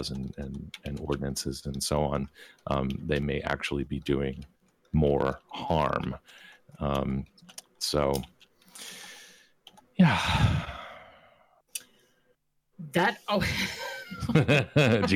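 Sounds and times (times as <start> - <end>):
speech: 0.0 - 9.0, 10.0 - 10.7, 12.8 - 15.1
clicking and tapping on a computer keyboard: 0.0 - 10.0
heavy sigh or exhale: 10.0 - 11.6
laughter: 13.4 - 15.1.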